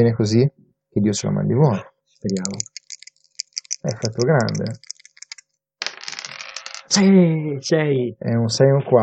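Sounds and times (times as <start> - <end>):
speech: 0.0 - 2.8, 3.8 - 5.0, 6.9 - 9.0
two dice rattling: 2.2 - 7.1.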